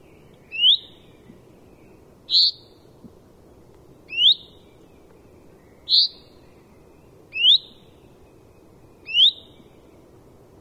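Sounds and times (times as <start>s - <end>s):
common chaffinch calling, Fringilla coelebs: 0.5s - 1.2s, 2.3s - 2.8s, 4.1s - 4.7s, 5.8s - 6.4s, 7.3s - 7.8s, 9.0s - 9.7s.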